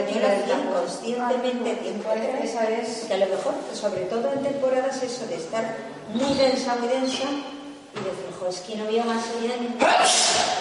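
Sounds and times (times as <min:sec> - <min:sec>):
speech: 0:00.1 - 0:10.5
sneeze: 0:09.8 - 0:10.5.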